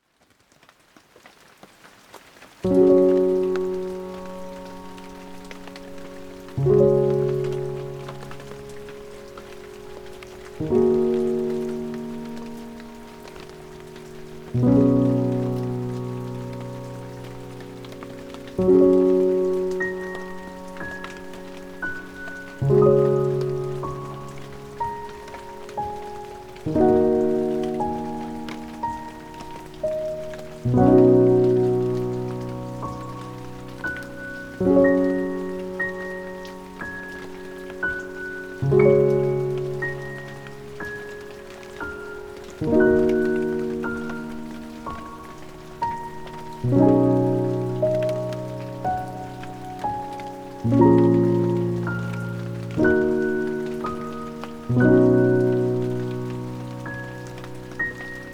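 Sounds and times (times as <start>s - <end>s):
rain: 0.0s - 58.3s
calming piano music: 2.4s - 58.3s.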